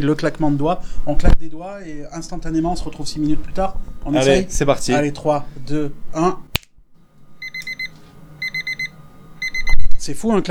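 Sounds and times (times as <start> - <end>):
speech: 0.0 - 6.5, 10.0 - 10.5
electronic alarm clock beeping: 7.4 - 9.9.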